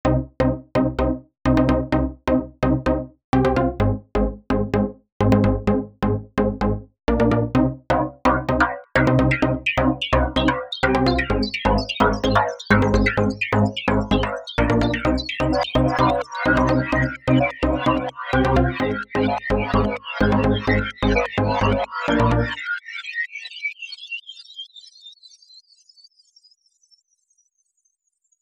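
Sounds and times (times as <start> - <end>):
space rave music: 0.0 - 22.7.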